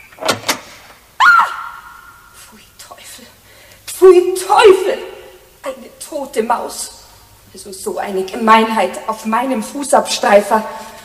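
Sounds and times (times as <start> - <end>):
door opening: 0.0 - 1.0
speech: 4.0 - 10.8.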